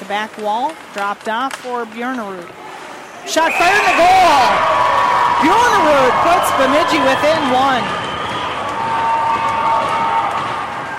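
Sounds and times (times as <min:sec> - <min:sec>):
speech: 0:00.1 - 0:02.6, 0:03.2 - 0:08.0
hockey arena crowd roaring and cheering after a goal: 0:03.3 - 0:10.9.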